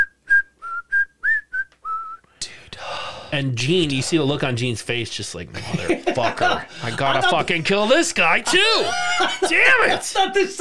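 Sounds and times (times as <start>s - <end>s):
person whistling a short tune: 0.0s - 2.2s
breathy burst: 2.3s - 3.4s
speech: 3.3s - 10.5s
laughter: 5.5s - 10.4s.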